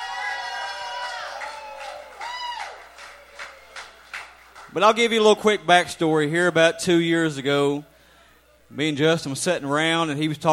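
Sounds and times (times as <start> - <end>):
audience cheering and whooping for a performer: 0.0 - 4.0
steady crowd roar: 0.0 - 4.2
speech: 4.7 - 7.9, 8.7 - 10.5.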